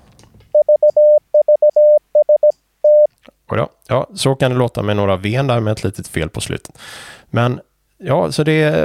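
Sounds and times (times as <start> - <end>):
Morse code tones from a radio used as an oscillator: 0.6 - 3.1
speech: 3.5 - 8.8.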